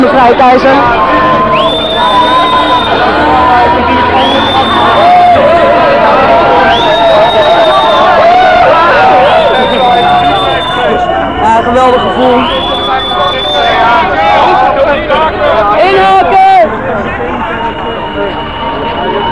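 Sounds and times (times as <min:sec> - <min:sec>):
large crowd of demonstrators marching and shouting through a street: 0:00.0 - 0:19.3
speech: 0:00.1 - 0:01.2, 0:11.6 - 0:12.7
rising whistle-like tone: 0:01.0 - 0:05.6, 0:06.4 - 0:14.4.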